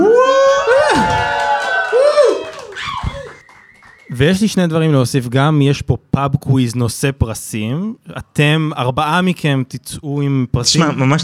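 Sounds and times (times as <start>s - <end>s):
live audience at an evening show cheering and whooping: 0.0s - 4.4s
speech: 4.2s - 11.2s.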